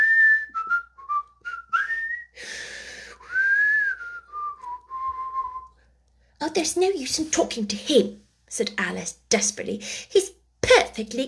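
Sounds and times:
person whistling a meandering tune: 0.0s - 5.8s
speech: 6.4s - 10.3s, 11.0s - 11.2s.

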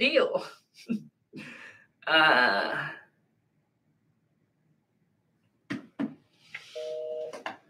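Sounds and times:
speech: 0.0s - 1.0s, 2.1s - 3.0s
telephone dialing beeps: 6.8s - 7.4s.

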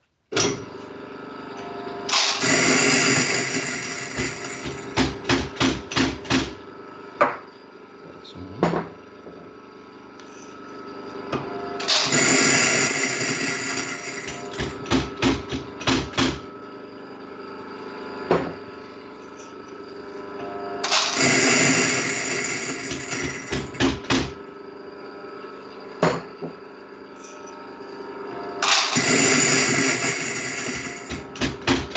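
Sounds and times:
constant coffee grinder motor hum: 0.4s - 31.9s
coffee grinder set to 7 grinding coffee beans: 1.4s - 6.3s, 9.2s - 16.5s, 18.8s - 25.7s, 28.6s - 31.9s.

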